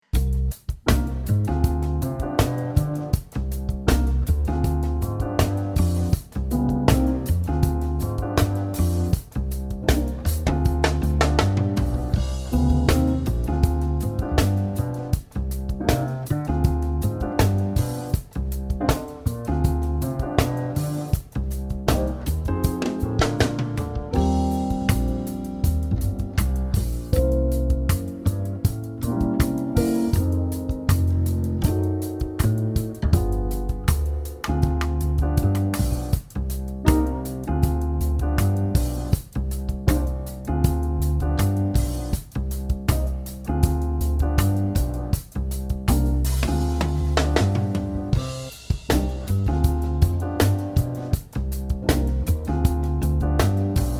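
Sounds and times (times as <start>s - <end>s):
funky jazz workout in the key of E-flat: 0.0s - 53.9s.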